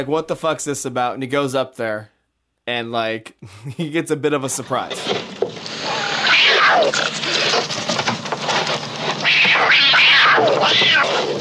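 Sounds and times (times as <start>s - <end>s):
speech: 0.0s - 5.4s, 6.7s - 7.9s
cat yowling as it leaps out of a hole in a wall: 5.7s - 7.4s, 9.2s - 11.3s.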